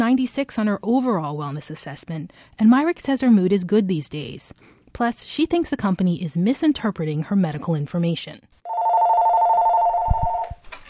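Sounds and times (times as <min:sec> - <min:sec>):
speech: 0:00.0 - 0:08.6
telephone ringing with a steady electronic tone: 0:08.7 - 0:10.6.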